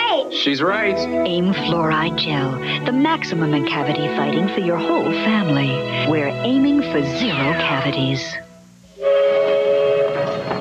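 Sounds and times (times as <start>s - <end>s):
speech: 0.4s - 9.1s
luxury passenger train whistle: 8.9s - 10.5s.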